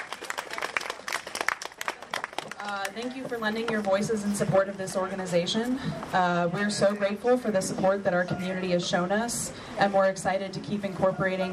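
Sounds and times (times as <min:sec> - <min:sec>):
audience applause for speakers at a community event: 0:00.0 - 0:02.9
speech: 0:02.7 - 0:11.5.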